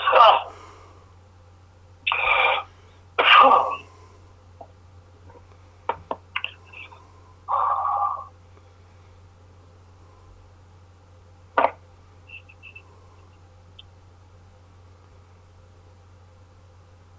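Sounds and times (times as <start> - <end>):
low steady hum: 0.0 - 17.1
person clearing throat: 2.1 - 3.9
person coughing after swallowing beer while smoking a cigarette: 2.1 - 3.9.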